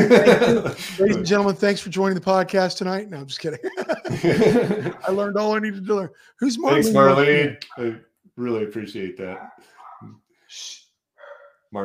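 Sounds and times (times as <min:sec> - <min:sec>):
laughter: 0:00.0 - 0:01.5, 0:03.3 - 0:05.8, 0:06.6 - 0:07.2
speech: 0:00.0 - 0:10.8
dogs barking: 0:04.6 - 0:05.2, 0:09.3 - 0:10.2, 0:11.2 - 0:11.6.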